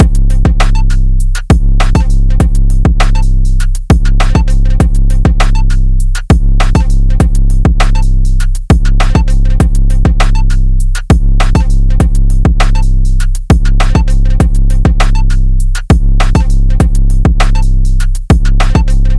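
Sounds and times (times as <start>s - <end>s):
phonk drum loop at 100 BPM: 0.0s - 19.1s.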